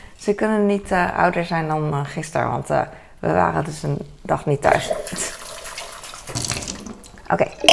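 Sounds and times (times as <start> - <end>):
speech: 0.2 - 5.4, 7.3 - 7.7
tap water running into a glass: 4.9 - 7.7.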